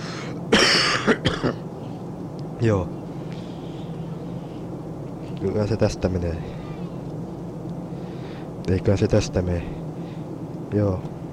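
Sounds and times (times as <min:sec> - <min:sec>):
person coughing with a raspy voice after a sore throat: 0:00.5 - 0:01.6
throat clearing: 0:00.6 - 0:01.6
speech: 0:02.6 - 0:03.0, 0:05.4 - 0:06.6, 0:08.7 - 0:09.8, 0:10.7 - 0:11.2.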